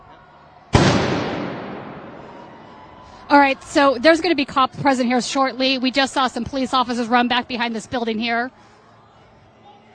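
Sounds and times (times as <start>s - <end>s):
firework bursting with a loud boom: 0.8s - 2.5s
speech: 3.3s - 8.7s.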